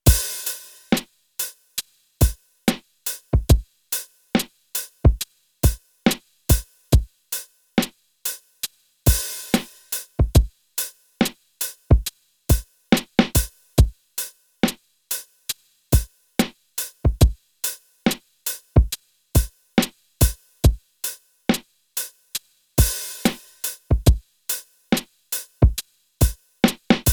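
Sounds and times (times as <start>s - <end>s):
lo-fi drum beat: 0.0s - 1.5s, 2.2s - 7.1s, 7.8s - 8.4s, 9.1s - 14.0s, 16.0s - 20.8s, 21.5s - 27.1s.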